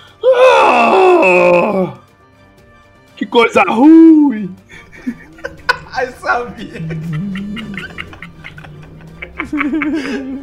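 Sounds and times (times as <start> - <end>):
person imitating the pained scream of a creature hit by a pine cone: 0.2 - 2.0
speech: 3.4 - 4.6, 6.0 - 7.5, 9.4 - 10.4
laughter: 4.7 - 10.4.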